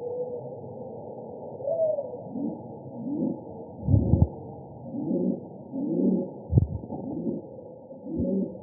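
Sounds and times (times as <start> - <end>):
rock pigeon cooing in Arizona: 1.6 - 4.3, 4.9 - 8.6
dull background rumble: 3.7 - 4.4, 6.2 - 7.5.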